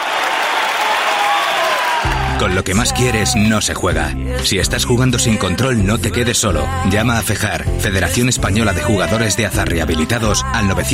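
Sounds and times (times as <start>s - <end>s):
large crowd applauding at a graduation ceremony: 0.0s - 2.8s
speech: 2.4s - 10.9s.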